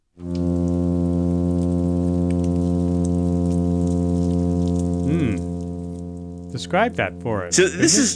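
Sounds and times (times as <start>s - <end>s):
plainfin midshipman fish humming along the California coast: 0.0s - 8.1s
speech: 6.6s - 8.1s.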